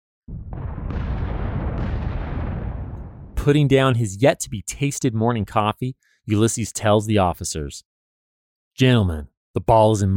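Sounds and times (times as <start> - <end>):
artillery guns firing during a Civil War battle: 0.3 - 3.5
speech: 3.4 - 7.9, 8.8 - 10.1.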